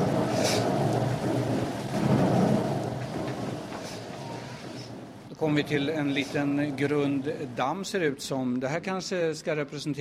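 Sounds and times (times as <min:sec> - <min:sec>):
deep thunder rumbling: 0:00.0 - 0:07.6
heavy rain: 0:00.0 - 0:08.3
speech: 0:05.4 - 0:09.9.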